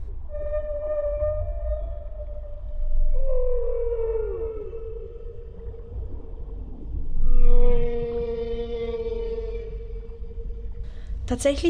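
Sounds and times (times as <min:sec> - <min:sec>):
whale song in deep sea water: 0:00.0 - 0:11.1
low rumbling underwater hum: 0:00.0 - 0:11.6
speech: 0:11.3 - 0:11.6.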